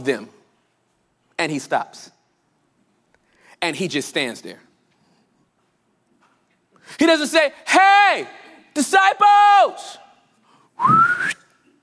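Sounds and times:
speech: 0.0 - 0.4, 1.4 - 2.2, 3.6 - 4.7, 6.9 - 10.0, 10.8 - 11.4
person whistling upward in pitch: 10.8 - 11.6.

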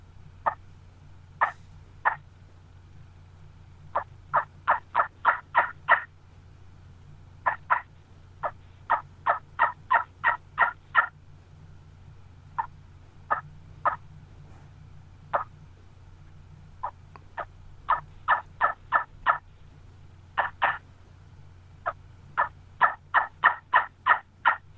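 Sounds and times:
low steady hum: 0.0 - 24.7
homemade wingbone turkey call of gobbler bones yelping: 0.4 - 0.7, 1.4 - 2.3, 3.9 - 6.1, 7.4 - 11.2, 12.6 - 14.1, 15.3 - 15.6, 16.8 - 19.5, 20.3 - 20.9, 21.8 - 24.7.

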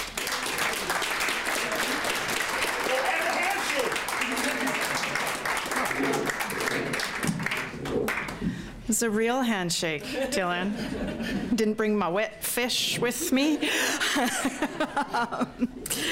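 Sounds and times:
audience applause: 0.0 - 8.4
speech: 9.0 - 15.8
laughter: 10.0 - 11.6, 13.2 - 16.0.

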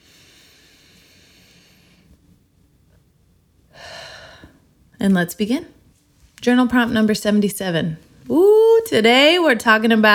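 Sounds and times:
deep breath taken while settling before journaling: 0.0 - 2.2, 3.7 - 4.7
speech: 5.0 - 5.8, 6.4 - 10.1.

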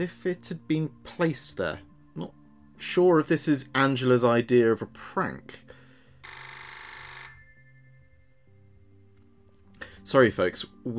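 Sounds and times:
speech: 0.0 - 5.6, 10.1 - 10.9
telephone bell ringing with incoming call on studio emergency line: 6.2 - 8.7.

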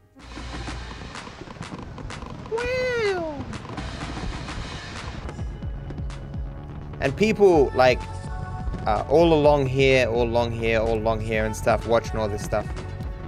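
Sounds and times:
rumble: 0.0 - 13.2
fireworks cracking and popping: 0.2 - 9.1
speech: 7.0 - 8.1, 8.8 - 12.8.

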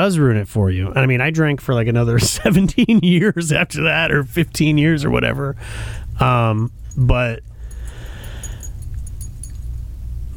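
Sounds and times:
speech: 0.0 - 7.5
laughter: 2.2 - 3.6
small metal tags on a dog's collar jingling: 4.2 - 10.3.

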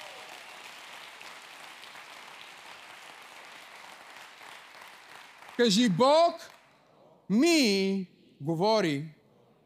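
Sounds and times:
audience clapping hands: 0.0 - 6.6
speech: 5.6 - 6.5, 7.3 - 9.2.

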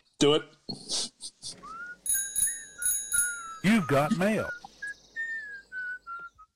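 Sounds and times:
speech: 0.2 - 1.1, 3.6 - 4.6
cheerful whistled tune: 1.6 - 6.5
bright bicycle bell rings: 2.1 - 3.6.

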